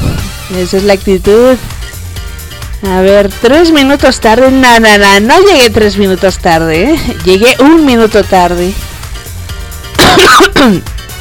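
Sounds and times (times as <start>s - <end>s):
speech: 0.5s - 1.8s, 2.8s - 8.9s, 10.1s - 11.0s
raspy coughing: 10.0s - 11.0s.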